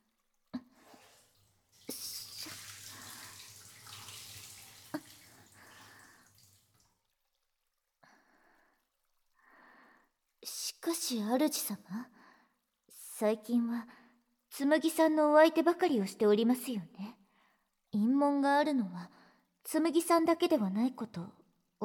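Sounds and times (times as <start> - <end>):
hot water poured in a bath: 0.1 - 11.1
speech: 10.8 - 12.2, 13.2 - 14.0, 14.6 - 17.2, 18.0 - 21.8.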